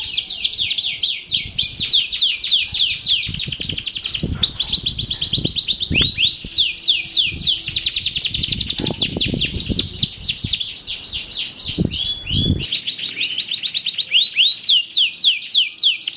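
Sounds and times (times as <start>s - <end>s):
Belgian canary warm-up song: 0.0s - 16.1s.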